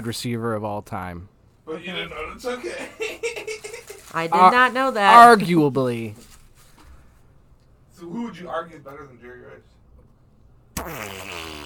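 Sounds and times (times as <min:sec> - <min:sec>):
speech: 0:00.0 - 0:06.3, 0:08.0 - 0:09.7, 0:10.8 - 0:11.6
laughter: 0:02.6 - 0:04.2
loud fart: 0:10.8 - 0:11.6.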